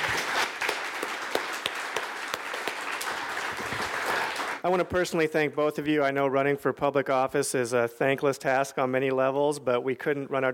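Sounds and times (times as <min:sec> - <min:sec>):
audience applauding two candidates for public office: 0:00.0 - 0:04.6
speech: 0:04.6 - 0:10.5.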